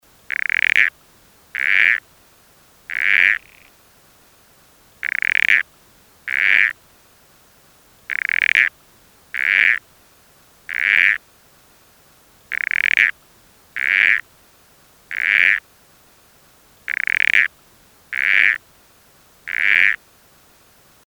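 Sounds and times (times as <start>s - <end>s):
Southern Corroboree Frog calling: 0.3s - 0.9s, 1.5s - 2.0s, 2.9s - 3.8s, 5.0s - 6.8s, 8.1s - 8.7s, 9.3s - 9.8s, 10.7s - 11.2s, 12.5s - 13.2s, 13.8s - 14.2s, 15.1s - 15.6s, 16.9s - 17.5s, 18.1s - 18.6s, 19.4s - 20.0s.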